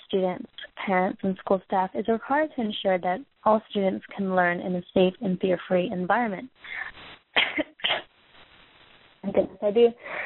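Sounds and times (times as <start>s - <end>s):
speech: 0.1s - 7.6s, 9.3s - 10.2s
harsh coughing: 7.4s - 8.1s.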